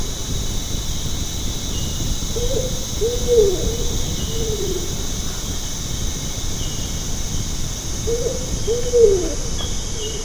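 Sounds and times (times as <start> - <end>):
constant high hum: 0.0 - 10.2
Bornean ground cuckoo giving low short hooting notes: 2.3 - 5.3, 8.0 - 10.2
speech: 2.4 - 4.7, 8.7 - 9.4.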